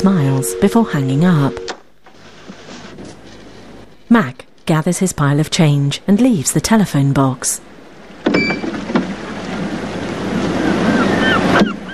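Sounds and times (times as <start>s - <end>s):
speech: 0.0s - 1.8s, 4.1s - 7.7s
waves washing over rocks in a bay: 8.1s - 11.9s.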